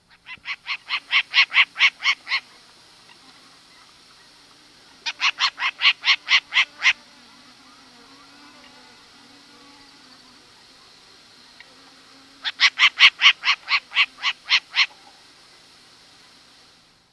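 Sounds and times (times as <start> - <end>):
short-eared owl calling: 0.0 - 8.9, 12.4 - 15.3.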